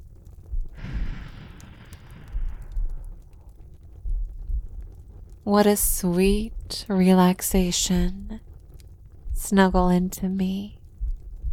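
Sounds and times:
low rumbling: 0:00.0 - 0:11.5
slow deep breathing in and out: 0:00.7 - 0:03.6
speech: 0:05.5 - 0:08.4, 0:09.4 - 0:10.8.

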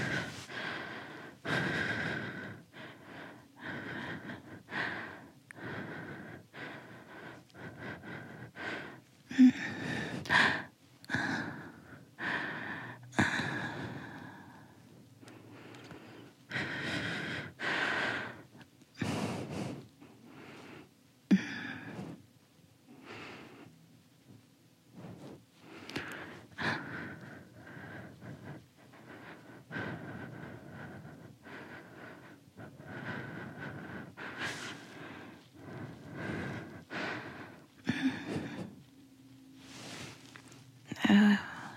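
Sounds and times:
heavy breathing of a person moving around in bed: 0:00.0 - 0:22.3, 0:24.9 - 0:39.0, 0:39.6 - 0:41.7
soft shuffling of bedding: 0:39.6 - 0:40.7.

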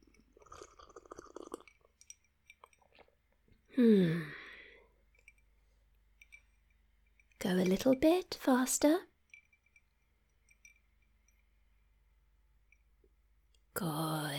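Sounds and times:
slurping sip from a drink: 0:00.3 - 0:01.9
speech: 0:03.8 - 0:04.4, 0:07.6 - 0:09.1, 0:13.8 - 0:14.2.

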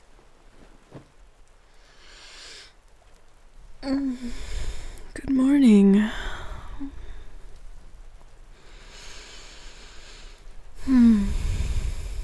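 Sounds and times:
soft rain falling outside: 0:00.0 - 0:12.2
speech: 0:03.8 - 0:04.6, 0:05.2 - 0:07.0
breath or sigh: 0:03.8 - 0:04.8, 0:10.8 - 0:12.2.

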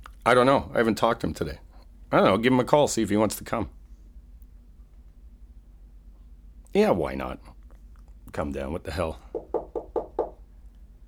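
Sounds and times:
speech: 0:00.2 - 0:03.8, 0:06.8 - 0:07.6, 0:08.3 - 0:09.5
knocking on a door: 0:09.3 - 0:10.4.

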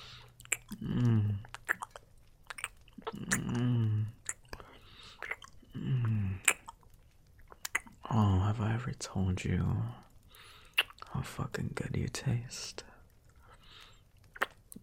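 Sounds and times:
wet mouth licking and sucking: 0:00.0 - 0:08.1, 0:10.0 - 0:11.1, 0:13.0 - 0:14.8
speech: 0:09.0 - 0:10.1, 0:11.2 - 0:12.9.

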